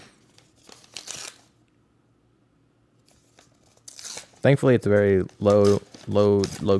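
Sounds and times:
wrapping paper being torn off a gift: 0.2 - 1.6, 3.0 - 6.7
speech: 4.4 - 6.7.

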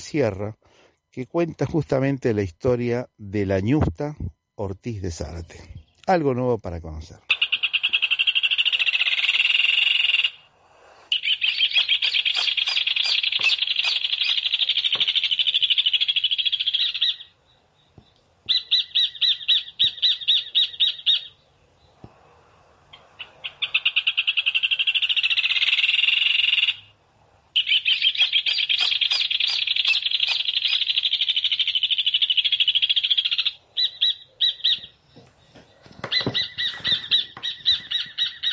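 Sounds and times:
speech: 0.0 - 7.3
rufous hornero birds calling in rapid ringing trills: 7.2 - 10.5, 11.1 - 22.0, 22.9 - 27.0, 27.6 - 38.5.

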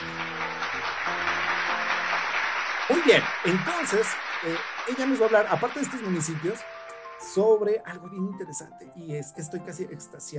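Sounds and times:
audience applause: 0.0 - 7.4
speech: 2.9 - 10.3.

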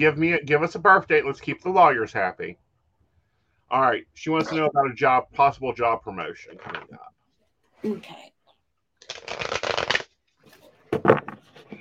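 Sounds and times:
speech: 0.0 - 2.6, 3.7 - 7.2, 7.8 - 8.3
tarot cards being shuffled: 9.0 - 11.7.

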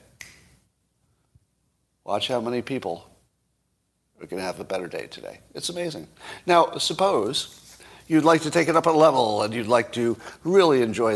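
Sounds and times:
finger snap: 0.0 - 0.7
speech: 2.1 - 3.1, 4.2 - 11.1.

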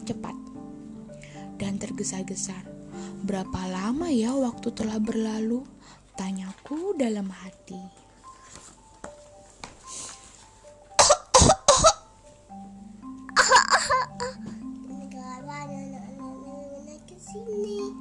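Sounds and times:
speech: 0.1 - 0.4, 1.6 - 8.0
person coughing: 11.0 - 12.1, 13.4 - 14.4.

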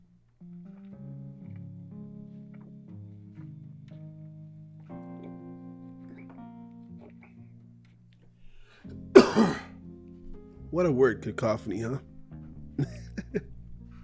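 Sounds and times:
person coughing: 9.2 - 9.8
speech: 10.7 - 12.1.

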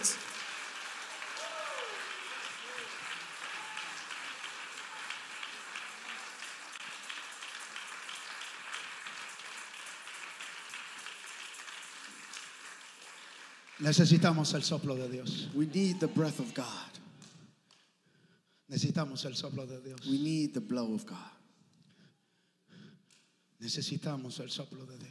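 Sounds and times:
congregation applauding during a church worship service: 0.0 - 17.4
speech: 13.8 - 17.0, 18.7 - 21.4, 23.6 - 25.1.

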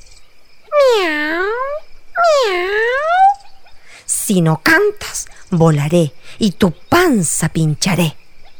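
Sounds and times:
angry cat meowing: 0.7 - 3.5
speech: 4.3 - 8.2.

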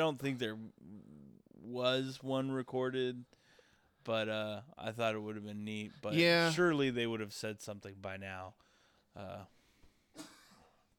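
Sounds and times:
speech: 0.0 - 3.4, 4.0 - 9.6
harsh raspy coughs: 10.2 - 10.9.

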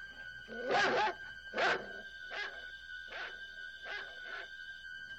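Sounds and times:
dog barking in short sharp bursts: 0.5 - 2.6, 3.1 - 4.5
dog whining and whimpering: 0.5 - 4.5.

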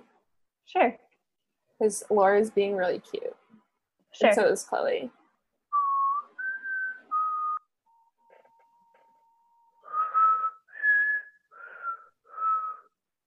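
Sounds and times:
speech: 0.7 - 1.0, 1.8 - 3.4, 4.2 - 5.2
person whistling a short tune: 5.8 - 13.2.

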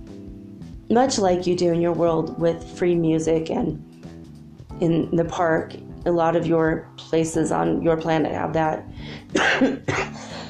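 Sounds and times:
speech: 0.9 - 3.9, 4.8 - 10.3
person with a sore throat coughing: 9.3 - 10.4.

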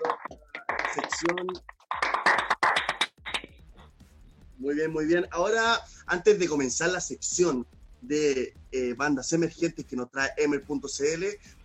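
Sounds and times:
people clapping: 0.0 - 3.6
speech: 1.0 - 1.8, 4.6 - 11.6.

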